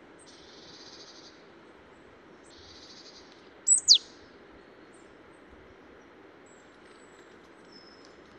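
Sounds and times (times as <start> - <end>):
faint low background hiss: 0.0 - 8.3
Poecile palustris marsh tit calling: 3.7 - 4.0.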